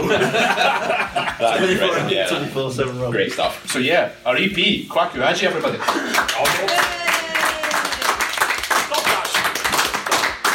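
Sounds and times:
laughter: 0.0s - 2.2s, 5.6s - 7.7s
speech: 1.4s - 6.8s
small group applauding: 5.8s - 10.5s.

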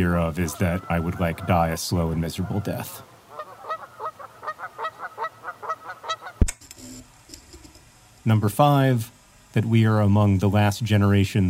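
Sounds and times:
speech: 0.0s - 3.1s, 8.2s - 11.4s
geese honking: 0.0s - 6.4s.

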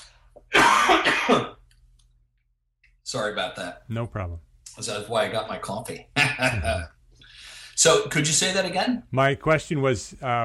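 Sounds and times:
coughing and throat clearing from a cold: 0.4s - 1.8s, 6.1s - 7.0s
speech: 3.1s - 7.0s, 7.8s - 10.4s.

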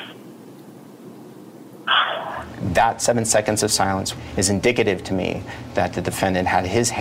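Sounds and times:
dog barking on a voicemail recording: 1.9s - 2.5s
speech: 2.7s - 7.0s.

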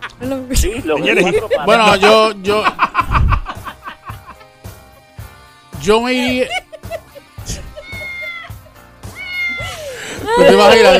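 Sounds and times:
laughter: 0.0s - 4.6s, 6.1s - 8.8s, 9.4s - 10.9s
speech: 0.2s - 3.3s, 5.8s - 6.6s, 10.6s - 10.9s
cat meowing: 7.7s - 9.8s.

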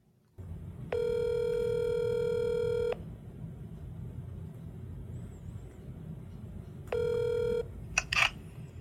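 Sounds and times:
steady low rumble: 0.0s - 8.7s
buzzy phone ringback tones: 0.9s - 3.0s, 6.9s - 7.7s.

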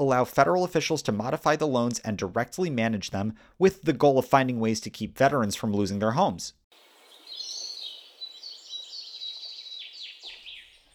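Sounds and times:
speech: 0.0s - 6.6s
high bright bird chirps and tweets: 6.8s - 10.9s.

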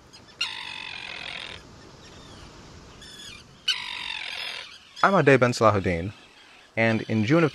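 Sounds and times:
harsh tern calls at a breeding colony on a tiny island off Maine: 0.4s - 1.6s, 3.0s - 7.5s
speech: 5.0s - 6.2s, 6.8s - 7.5s.

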